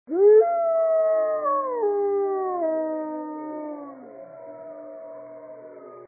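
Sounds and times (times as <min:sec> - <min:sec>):
wolf howling: 0:00.1 - 0:06.0.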